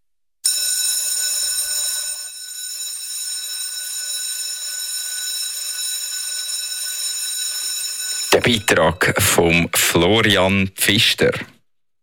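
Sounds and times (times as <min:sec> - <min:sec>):
electric school bell ringing: 0:00.4 - 0:09.2
speech: 0:08.4 - 0:11.6.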